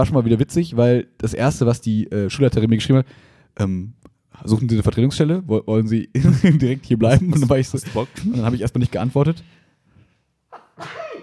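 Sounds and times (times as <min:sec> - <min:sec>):
speech: 0:00.0 - 0:09.6, 0:10.8 - 0:11.0
laughter: 0:06.2 - 0:09.0
person sneezing: 0:10.5 - 0:11.2.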